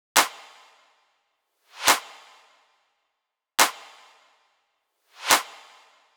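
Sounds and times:
riddim drum loop with clap: 0.1 - 0.8, 1.8 - 2.5, 3.6 - 4.2, 5.2 - 6.0.

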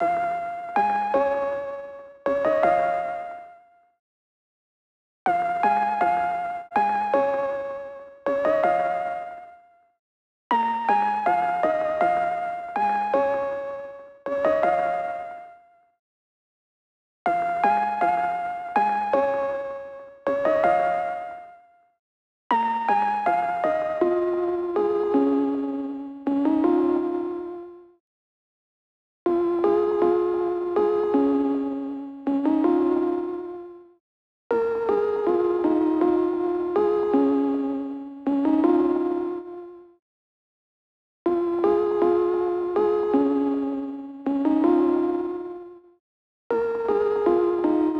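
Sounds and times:
lo-fi lead melody loop in A-sharp minor at 80 BPM: 0.0 - 3.6, 5.3 - 9.6, 10.5 - 15.6, 17.3 - 21.6, 22.5 - 27.9, 29.3 - 33.9, 34.5 - 39.9, 41.3 - 45.9, 46.5 - 47.9.

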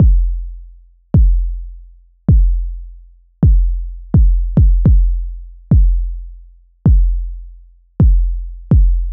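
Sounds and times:
experimental drum machine kick drum loop: 0.0 - 0.4, 1.2 - 1.5, 2.3 - 2.7, 3.4 - 6.1, 6.8 - 7.3, 8.0 - 9.1.

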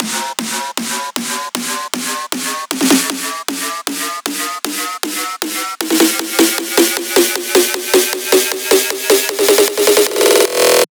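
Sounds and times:
music buildup loop: 0.0 - 10.8.

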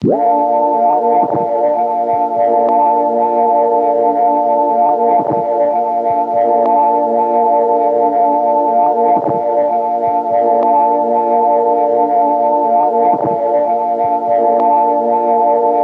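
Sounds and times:
tape loop pad in A sharp major: 0.0 - 15.8.

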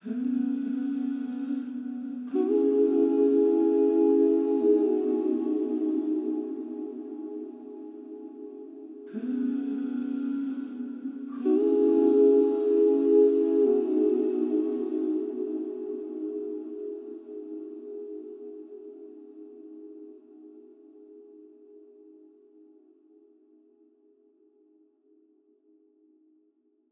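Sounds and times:
wet angelic vocals in E major: 0.0 - 21.2.

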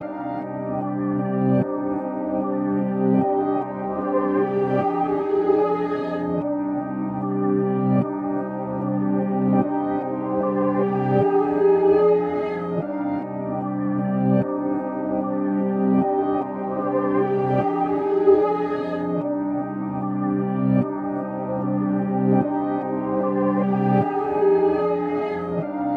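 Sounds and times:
reversed trap synth melody loop in C minor: 0.1 - 25.9.

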